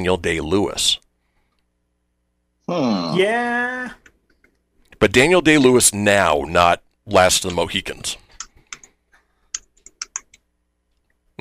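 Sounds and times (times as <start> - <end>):
speech: 0.0 - 1.0, 2.7 - 4.0, 5.0 - 8.2
typing on a computer keyboard: 9.6 - 10.4.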